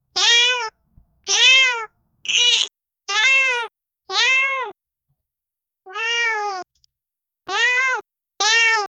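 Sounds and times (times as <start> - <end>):
cat crying: 0.1 - 4.8, 5.9 - 6.7, 7.5 - 8.9.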